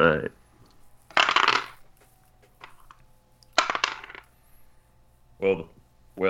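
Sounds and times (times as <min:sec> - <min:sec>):
dice clattering and rattling across a hard surface: 0:01.0 - 0:04.4.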